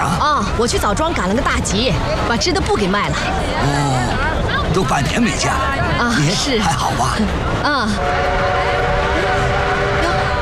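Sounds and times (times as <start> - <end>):
steady rumble of the rolling train cars: 0.0 - 10.3
speech: 0.6 - 8.6
train whistle while arriving at a station: 8.0 - 10.3.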